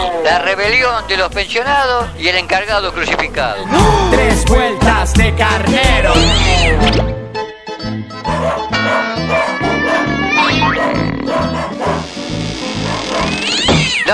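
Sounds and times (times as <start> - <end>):
speech: 0.2 - 7.1
cats meowing and caterwauling: 6.1 - 6.9, 8.8 - 14.1.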